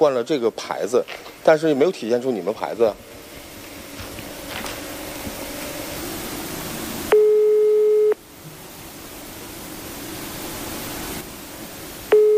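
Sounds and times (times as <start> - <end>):
speech: 0.0 - 3.2
faint hiss on the telephone line: 0.0 - 12.3
telephone ringback tone ringing unanswered: 7.1 - 8.2, 12.1 - 12.3.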